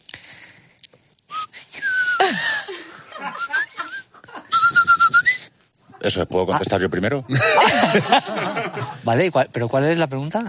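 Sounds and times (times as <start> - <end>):
person chuckling: 2.2 - 4.5
speech: 6.0 - 10.4.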